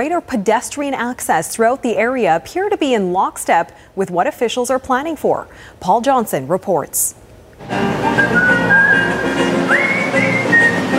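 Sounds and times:
speech: 0:00.0 - 0:08.8
person whistling a lilting tune while strolling through Granville Island in Vancouver: 0:08.1 - 0:10.9.

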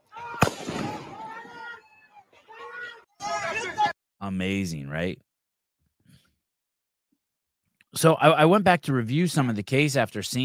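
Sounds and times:
gunshot from a video being watched: 0:00.3 - 0:01.6
speech: 0:04.3 - 0:05.2, 0:08.0 - 0:10.4.

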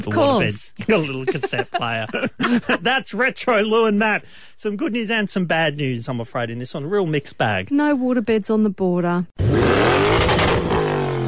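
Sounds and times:
speech: 0:00.0 - 0:10.2
laughter: 0:00.8 - 0:03.2
car engine revving with a harmonic whine: 0:09.4 - 0:11.2.

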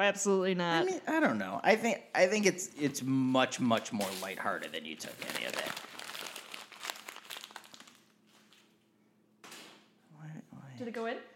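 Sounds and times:
speech: 0:00.0 - 0:06.0, 0:10.8 - 0:11.3
page of paper notes being crumpled: 0:04.0 - 0:08.8.

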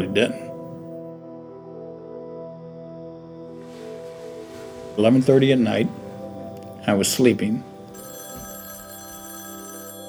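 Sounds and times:
speech: 0:00.0 - 0:00.4, 0:05.0 - 0:06.0, 0:06.8 - 0:07.7
telephone bell ringing with metallic trill: 0:07.9 - 0:10.0.

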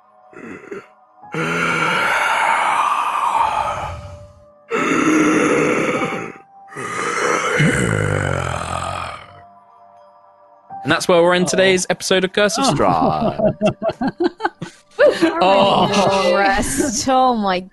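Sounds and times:
speech: 0:00.3 - 0:01.8, 0:10.9 - 0:14.4, 0:15.0 - 0:17.7
person imitating heavy breathing of a huge ancient creature: 0:00.4 - 0:09.3
laughter: 0:12.5 - 0:17.0.

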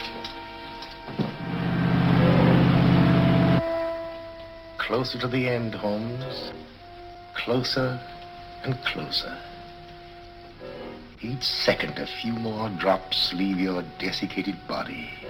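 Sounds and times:
boat engine starting and running: 0:01.4 - 0:03.6
speech: 0:04.9 - 0:06.7, 0:07.4 - 0:09.5, 0:11.2 - 0:15.2.

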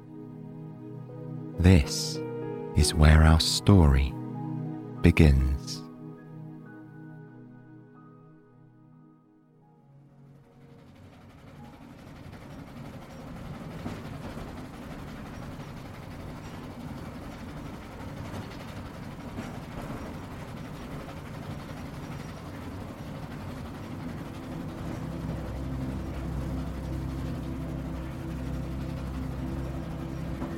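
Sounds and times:
soft musical tone: 0:00.0 - 0:12.3, 0:22.4 - 0:30.5
speech: 0:01.6 - 0:04.2, 0:05.0 - 0:05.8
rhythmic clatter of a moving provincial train: 0:12.0 - 0:26.3.

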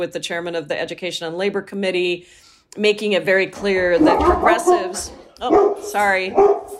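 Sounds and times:
speech: 0:00.0 - 0:06.7
dogs barking: 0:03.7 - 0:06.7.

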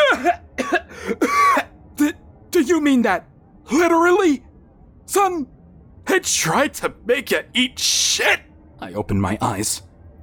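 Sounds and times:
man coughing: 0:00.0 - 0:01.7
speech: 0:02.7 - 0:04.5, 0:05.1 - 0:09.9.

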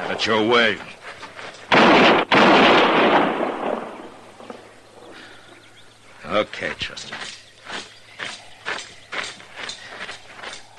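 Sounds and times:
speech: 0:00.1 - 0:01.0, 0:06.3 - 0:07.4
gunshots during an armed arrest outside a cabin: 0:01.7 - 0:04.6.

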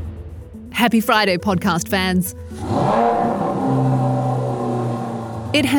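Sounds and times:
speech: 0:00.8 - 0:03.4, 0:05.5 - 0:05.7
Formula One race car engine at full throttle: 0:02.5 - 0:05.7.

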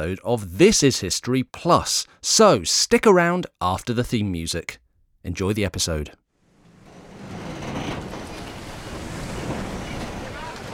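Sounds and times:
speech: 0:00.0 - 0:06.2
wind from a stiff breeze filling a large square sail: 0:06.7 - 0:10.7
choppy grey sea water slapping against the prow of a wooden ship: 0:06.8 - 0:10.7.

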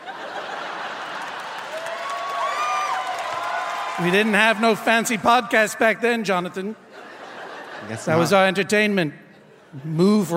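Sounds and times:
crowd laughter: 0:00.0 - 0:01.8, 0:06.8 - 0:08.6
large crowd clapping: 0:00.0 - 0:05.2
scattered crowd cheers: 0:01.4 - 0:04.6
speech: 0:04.0 - 0:06.8, 0:07.8 - 0:10.3.

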